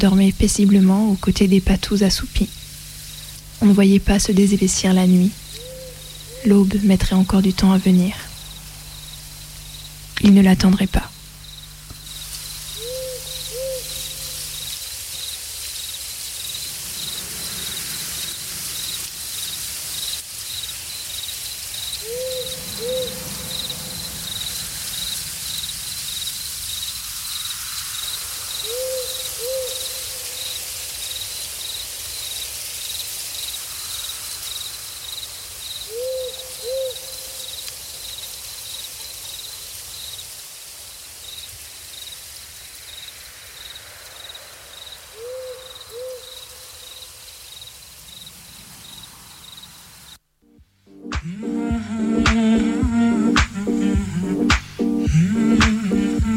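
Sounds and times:
speech: 0:00.0 - 0:02.6, 0:03.6 - 0:05.5, 0:06.4 - 0:08.2, 0:10.2 - 0:11.2
owl hooting: 0:00.0 - 0:10.1, 0:10.7 - 0:14.9, 0:21.8 - 0:25.6, 0:28.4 - 0:30.7, 0:35.9 - 0:37.6, 0:45.1 - 0:47.0
night insects chirping: 0:00.0 - 0:56.3.

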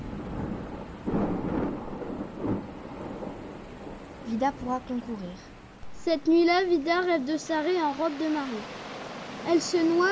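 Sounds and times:
low rumbles of thunder: 0:00.0 - 0:07.1
steady rain: 0:00.0 - 0:10.1
speech: 0:04.4 - 0:08.8, 0:09.4 - 0:10.1.

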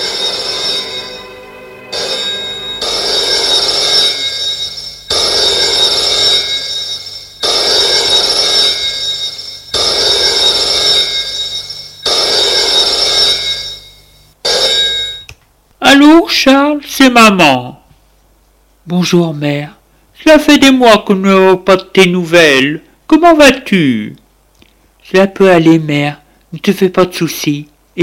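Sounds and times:
telephone ringing with a bright shrill bell tone: 0:00.0 - 0:15.3
speech: 0:16.4 - 0:17.8, 0:18.9 - 0:24.2, 0:25.1 - 0:28.0.

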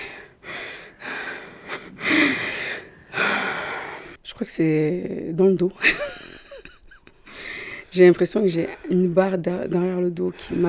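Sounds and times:
woman panting and gasping out of breath: 0:00.0 - 0:04.2, 0:06.5 - 0:09.2
speech: 0:04.4 - 0:06.0, 0:08.0 - 0:10.6.

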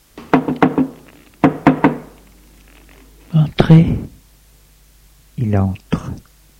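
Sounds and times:
knocking on a wooden bedroom door: 0:00.2 - 0:02.1
speech: 0:03.7 - 0:04.1, 0:05.4 - 0:06.0.

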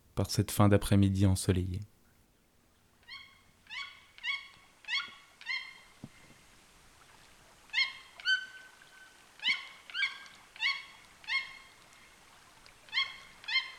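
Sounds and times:
speech: 0:00.2 - 0:01.9
toucans calling in flooded Amazon forest of Petit Saut lake: 0:03.0 - 0:06.0, 0:07.7 - 0:11.9, 0:12.9 - 0:13.7.

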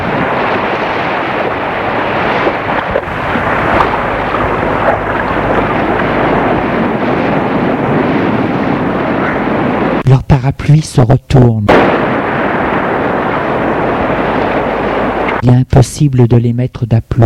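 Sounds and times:
strong gusts of wind buffeting the microphone: 0:00.0 - 0:10.4, 0:11.7 - 0:15.4
speech: 0:10.7 - 0:12.0, 0:15.4 - 0:17.2.

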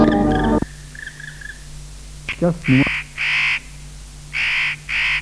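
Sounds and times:
crow-like bird cawing: 0:00.1 - 0:01.7, 0:02.6 - 0:05.2.

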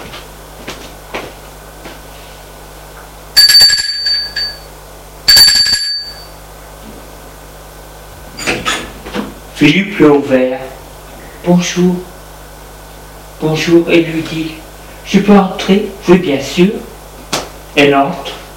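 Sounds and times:
electric doorbell ringing at an apartment door: 0:03.3 - 0:06.4
speech: 0:09.6 - 0:10.7, 0:11.5 - 0:12.1, 0:13.4 - 0:16.9, 0:17.7 - 0:18.4.

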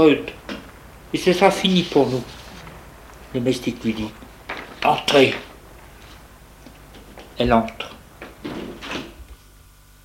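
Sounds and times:
speech: 0:00.0 - 0:00.4, 0:01.1 - 0:02.4, 0:03.3 - 0:05.5, 0:07.4 - 0:08.6
door being closed with soft thuds and knocks: 0:02.0 - 0:09.2.

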